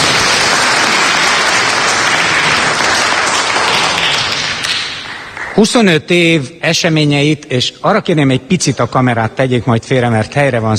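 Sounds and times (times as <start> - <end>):
audience applauding the mayor: 0.0 - 5.6
speech: 5.6 - 10.7.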